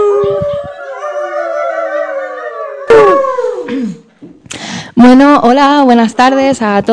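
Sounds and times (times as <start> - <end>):
dog howling: 0.0 - 3.7
speech: 5.0 - 6.9.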